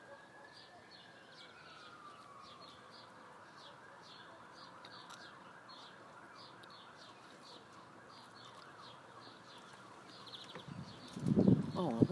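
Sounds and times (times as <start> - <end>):
noisy outdoor background: 0.0 - 12.0
several emergency vehicle sirens wailing: 0.0 - 12.0
speech: 11.8 - 12.0.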